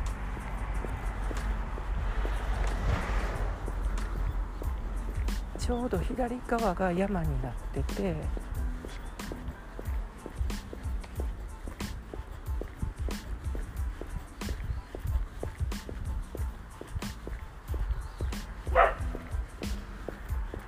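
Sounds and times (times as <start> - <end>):
footsteps crunching along a road outdoors: 0.0 - 20.6
speech: 5.7 - 8.5
faint dog barking outdoors: 18.7 - 19.0.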